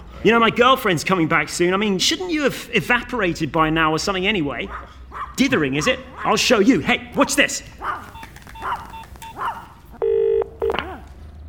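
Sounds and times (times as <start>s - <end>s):
speech: 0.2s - 8.1s
dog barking: 4.6s - 9.9s
loud telephone keypad dialing beeps: 8.0s - 10.5s.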